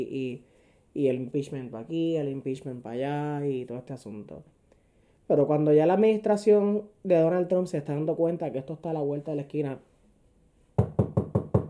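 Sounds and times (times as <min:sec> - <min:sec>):
speech: 0:00.0 - 0:04.6, 0:05.3 - 0:09.9
knocking on a wooden door: 0:10.8 - 0:11.6.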